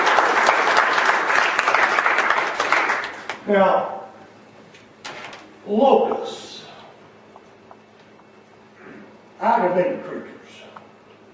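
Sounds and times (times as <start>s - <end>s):
congregation applauding: 0.0s - 3.4s
speech: 3.5s - 4.0s, 5.6s - 6.5s, 9.4s - 10.4s.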